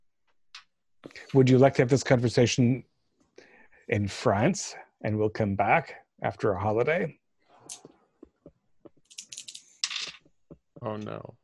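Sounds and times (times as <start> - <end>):
speech: 1.1 - 2.9, 3.9 - 7.9, 10.8 - 11.4
dice rolled during a tabletop role-playing game: 9.0 - 10.3.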